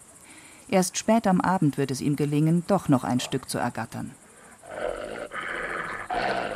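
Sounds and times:
speech: 0.7s - 4.2s
wolves growling at an outsider: 4.4s - 6.5s.

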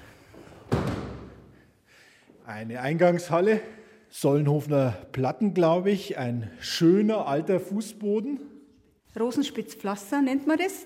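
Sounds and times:
heavy green front door of a house shutting: 0.7s - 1.5s
speech: 2.5s - 8.5s, 9.1s - 10.8s.

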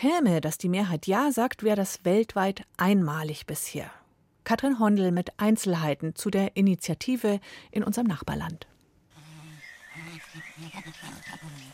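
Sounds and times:
speech: 0.0s - 8.7s
insects buzzing: 9.1s - 11.7s
birds: 9.2s - 11.7s
chimpanzees hooting in a rainforest in Tanzania: 9.5s - 11.7s.

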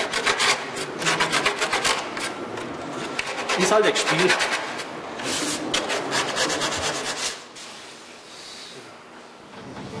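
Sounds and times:
sandpaper or a file rubbing against wood: 0.0s - 2.3s, 3.1s - 7.5s
speech: 3.6s - 4.6s.

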